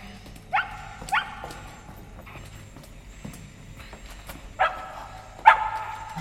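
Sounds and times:
dog barking while fetching something: 0.5 - 1.8, 4.6 - 6.2.

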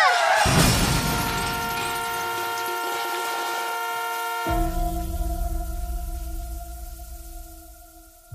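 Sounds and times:
crash with scattering shattering debris as a truck runs over a person: 0.1 - 8.3
horn of a very large speeding truck blaring on a highway: 0.8 - 7.6.

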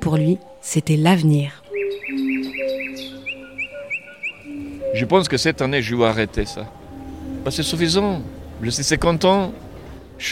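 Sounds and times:
speech: 0.0 - 1.6, 5.0 - 6.8, 7.4 - 10.2
person whistling an imitation of nightingale song: 1.7 - 5.1.

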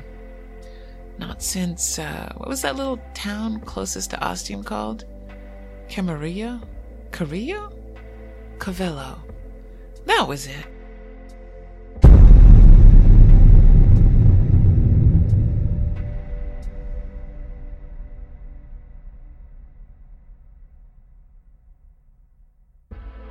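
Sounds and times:
speech: 1.4 - 5.1, 5.9 - 7.8, 8.6 - 9.4, 10.0 - 10.7
loud sharp crack: 12.0 - 18.0
long echoing rumble: 12.0 - 20.0.

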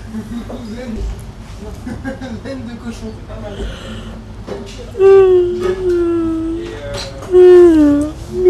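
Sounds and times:
person imitating a lion roar with vocal growls: 5.0 - 8.4
person talking: 5.0 - 8.4.

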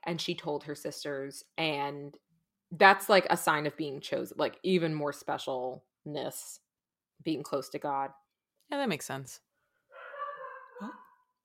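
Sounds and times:
speech: 0.0 - 6.6, 7.2 - 9.4, 10.8 - 11.0
dog letting out a drawn-out whiny moaning howl: 10.0 - 11.2.

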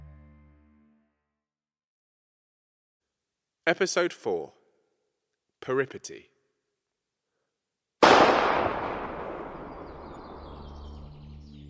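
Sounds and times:
speech: 3.7 - 4.6, 5.6 - 6.3
gunshot echoing across a field: 8.0 - 11.1.

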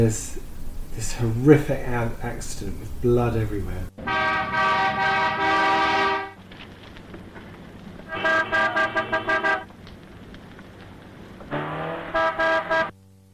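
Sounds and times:
speech: 0.0 - 0.4, 1.0 - 4.1
low traffic rumble: 0.0 - 13.0
car horns honking in a traffic jam of stalled cars: 4.0 - 6.4, 8.1 - 9.7, 11.5 - 12.9.

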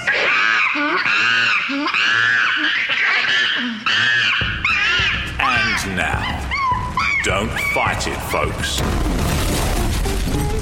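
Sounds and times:
monkey screeching: 0.0 - 8.1
speech: 1.7 - 2.4, 7.2 - 10.4.

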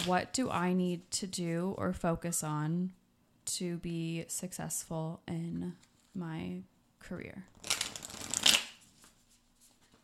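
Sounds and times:
speech: 0.0 - 7.8
deck of cards being riffle shuffled: 7.5 - 10.0.

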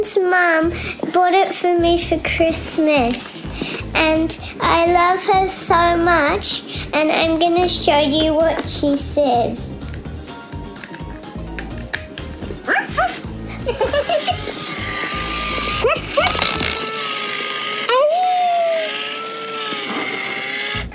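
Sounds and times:
speech: 0.0 - 9.7, 13.0 - 14.5
laughter: 13.5 - 14.7
robot toy dog barking: 14.2 - 20.9.

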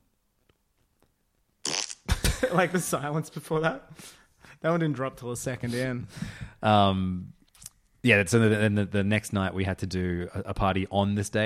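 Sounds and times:
raspy mouth fart into a microphone: 1.6 - 2.2
speech: 2.4 - 7.4, 8.0 - 11.4.

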